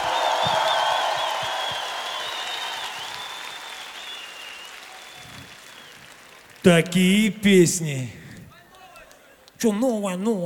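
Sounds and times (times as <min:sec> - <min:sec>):
concert audience cheers and whistles: 0:00.0 - 0:06.5
large concert audience applauding in a big hall: 0:00.0 - 0:07.7
speech: 0:06.6 - 0:08.2, 0:09.6 - 0:10.4.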